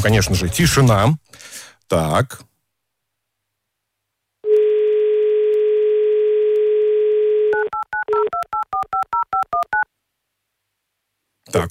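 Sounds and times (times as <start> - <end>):
speech: 0.0 - 2.5, 11.5 - 11.7
telephone dial tone: 4.4 - 9.8.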